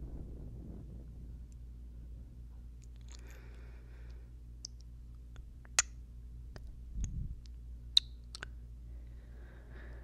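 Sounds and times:
low steady hum: 0.0 - 10.0
wet mouth clicks and smacks: 2.8 - 3.3, 4.6 - 6.0, 6.6 - 8.6.

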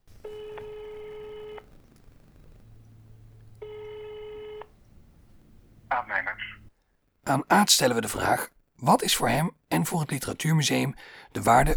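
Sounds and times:
telephone ringback buzzing tones: 0.0 - 6.7
faint low hum: 0.0 - 8.5
speech: 7.3 - 11.7.

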